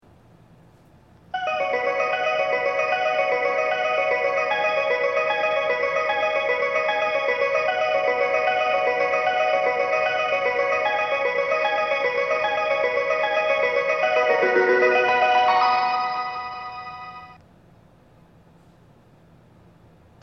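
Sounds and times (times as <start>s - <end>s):
train station departure melody: 1.4s - 17.4s.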